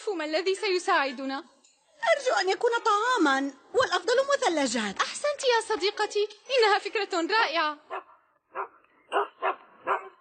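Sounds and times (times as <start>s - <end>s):
speech: 0.2s - 9.3s
dog barking inside a hot car with windows closed: 7.9s - 10.1s.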